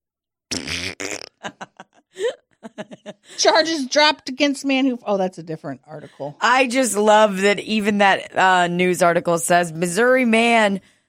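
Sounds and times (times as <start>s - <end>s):
loud buzzy fart: 0.5s - 1.4s
short choppy vocal bursts: 0.5s - 1.4s
laughter: 1.4s - 3.8s
speech: 3.4s - 10.9s.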